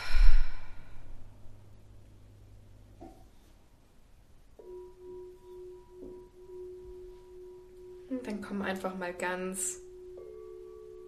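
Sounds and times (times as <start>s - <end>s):
deep breath exhaled through the mouth during a guided relaxation exercise: 0.0s - 1.2s
speech: 8.2s - 9.8s.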